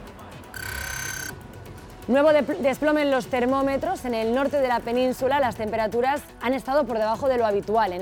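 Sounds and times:
alarm clock sustained electronic beep: 0.6 - 1.4
speech: 2.1 - 8.0.

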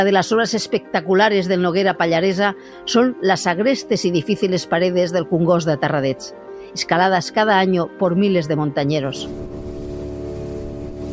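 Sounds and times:
speech: 0.0 - 9.6
motorboat engine on the Noguera Pallaresa river: 9.2 - 11.1.

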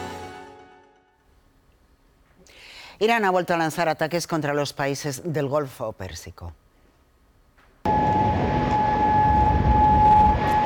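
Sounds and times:
speech: 3.0 - 6.6
broad rumbling background: 7.9 - 10.6
warning siren tone: 7.9 - 10.6.

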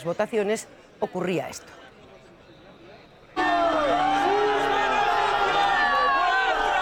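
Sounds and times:
speech: 0.0 - 1.9
large crowd of protesters booing near the Congress: 3.4 - 6.8.

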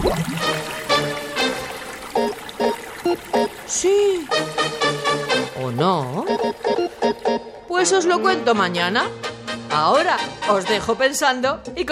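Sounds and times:
fizzy lemonade water pouring and splashing into a lagoon: 0.0 - 7.7
short bright glugging bursts: 0.0 - 7.7
speech: 3.8 - 4.5, 5.7 - 6.2, 7.8 - 11.9.

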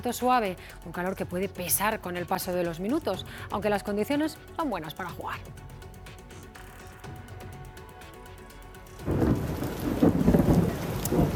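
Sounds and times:
speech: 0.0 - 5.8
steady falling rain: 8.4 - 11.3
deep rolling thunder rumbling: 9.0 - 11.3.

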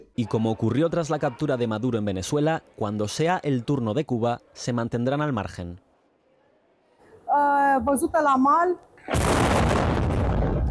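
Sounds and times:
reporter talking during a live broadcast: 0.0 - 5.8
speech: 0.2 - 5.8, 7.3 - 9.8
naval drone self-destructing in a loud explosion in a port: 9.1 - 10.7.

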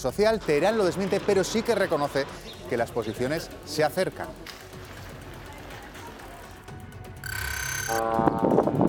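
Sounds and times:
speech: 0.0 - 4.6, 7.9 - 8.7
alarm-like tone: 7.2 - 8.4.

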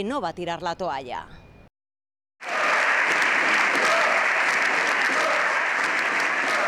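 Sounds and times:
speech: 0.0 - 1.4
indistinct raised voices: 2.4 - 6.6
loud sustained applause in a parliamentary chamber: 2.4 - 6.6
opposition shouting in a parliamentary chamber: 2.4 - 6.6.

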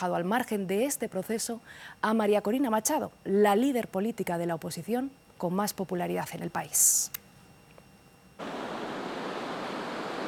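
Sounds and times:
speech: 0.0 - 7.2
ocean waves crashing onto the shore at La Guaira: 8.4 - 10.2.

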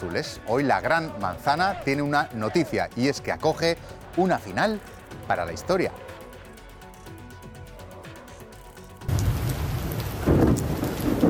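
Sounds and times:
speech: 0.0 - 6.2
heavy rain hissing across a surface in New York: 9.1 - 11.2
low rumbling thunder during an electric storm in New York: 9.1 - 11.2.

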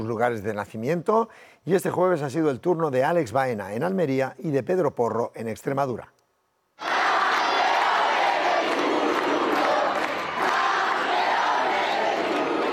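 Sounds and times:
speech: 0.1 - 6.2
large crowd cheering and applauding at a homecoming: 6.8 - 12.7.

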